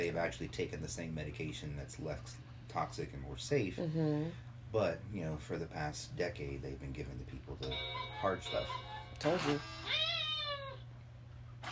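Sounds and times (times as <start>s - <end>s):
speech: 0.0s - 10.1s
steady low hum: 0.0s - 11.6s
cat meowing: 9.6s - 10.9s.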